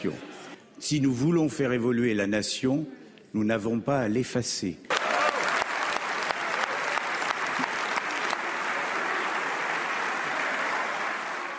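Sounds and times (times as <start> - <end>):
speech: 0.0 - 5.0
standing ovation applause in a Senate chamber: 4.9 - 11.5.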